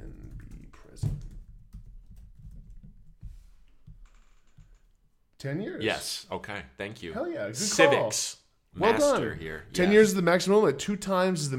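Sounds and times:
typing on a computer keyboard: 0.0 - 3.1
speech: 5.4 - 11.5.

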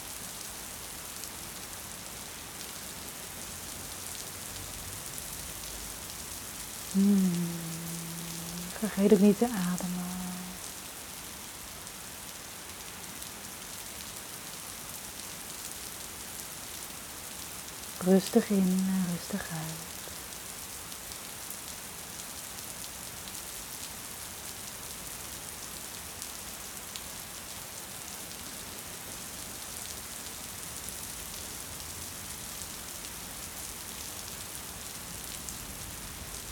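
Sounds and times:
soft rain pattering on a surface: 0.1 - 36.5
speech: 7.0 - 7.4, 8.8 - 9.9, 18.1 - 20.0.

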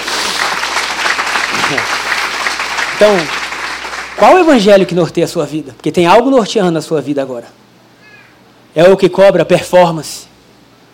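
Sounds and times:
crowd applauding: 0.0 - 5.0
speech: 3.0 - 3.4, 4.2 - 7.6, 8.8 - 10.3.

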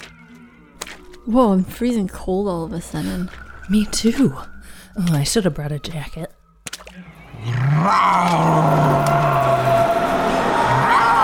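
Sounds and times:
speech: 1.2 - 6.3, 7.4 - 9.3
tiger roaring: 7.1 - 11.2.

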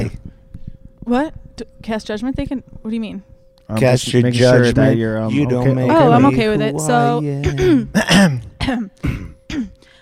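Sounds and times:
speech: 1.1 - 9.7
person clearing throat from saliva built up at the back of the throat: 7.4 - 9.8.

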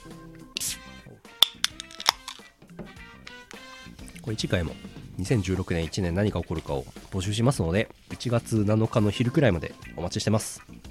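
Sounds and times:
glasses clinking in a beer toast: 1.4 - 2.4
speech: 4.2 - 10.8.

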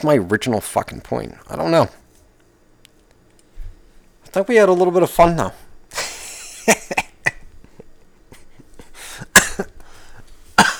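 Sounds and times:
speech: 0.0 - 2.0, 4.3 - 5.6
harsh rasping coughing: 5.9 - 10.7.

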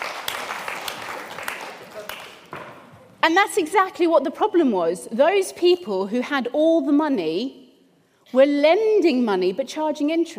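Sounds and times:
audience applauding: 0.0 - 2.8
sharp individual claps: 0.0 - 2.9
speech: 3.2 - 7.6, 8.3 - 10.3.

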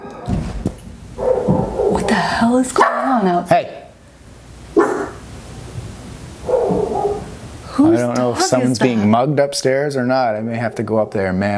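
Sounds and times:
steady low hum: 0.0 - 11.5
dog barking aggressively: 1.2 - 2.2, 2.8 - 3.2, 4.7 - 5.2, 6.4 - 7.4
speech: 2.2 - 3.8, 8.0 - 11.5.

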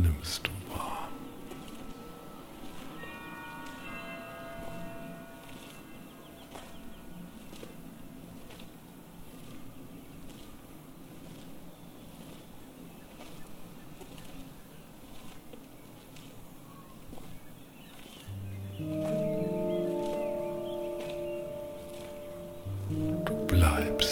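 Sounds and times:
steady breathy wind: 0.0 - 24.1
small chapel bell ringing softly: 1.0 - 8.2.

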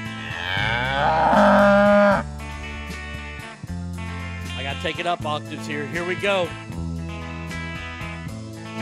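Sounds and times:
cow mooing: 0.0 - 2.2
speech: 4.8 - 6.9.

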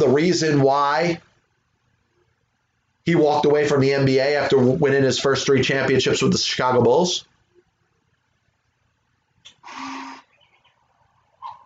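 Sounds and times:
speech: 0.0 - 1.3, 3.1 - 7.3
cuckoo clock calling: 9.6 - 10.4.

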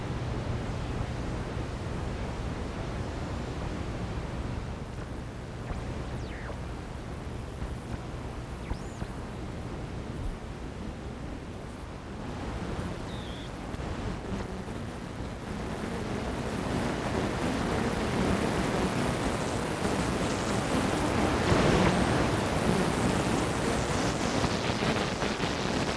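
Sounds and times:
low steady hum: 0.0 - 21.8
shortwave radio static from a 25 foot antenna at night: 4.4 - 25.9
thin high tone: 5.6 - 6.7.

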